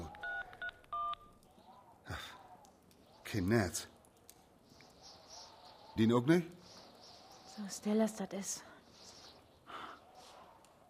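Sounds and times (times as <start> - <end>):
mobile phone keypad tones: 0.0 - 1.4
speech: 3.3 - 3.9, 6.0 - 6.6, 7.6 - 8.7.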